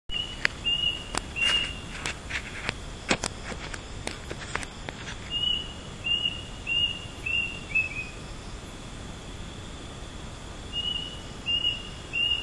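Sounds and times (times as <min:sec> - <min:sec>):
unidentified bird calling with short high whistled notes at midnight in Penang: 0:00.1 - 0:02.1, 0:05.2 - 0:08.4, 0:10.7 - 0:12.4
rustling and clicking handling noise of a voice recorder: 0:01.1 - 0:05.4.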